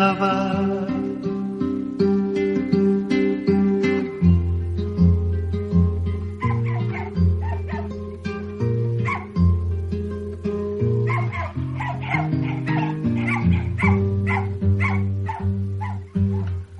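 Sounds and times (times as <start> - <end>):
continuous melodic music bed: 0.0 - 16.7
dog barking and whimpering in short yelps: 6.3 - 8.1, 8.9 - 9.4, 10.9 - 16.7.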